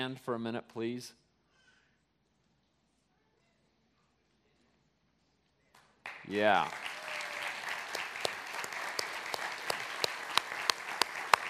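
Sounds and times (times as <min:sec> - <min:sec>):
speech: 0:00.0 - 0:01.2, 0:06.3 - 0:06.9
sharper louder individual claps: 0:05.8 - 0:11.4
audience applauding volunteers at a Vacation Bible Camp: 0:06.0 - 0:11.4.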